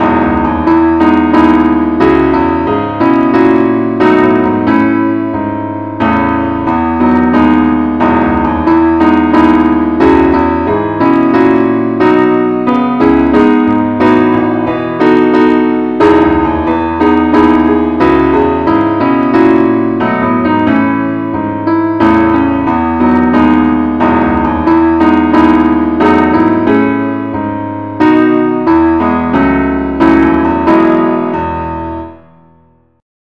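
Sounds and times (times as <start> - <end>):
keyboard playing the key E: 0.0 - 33.0.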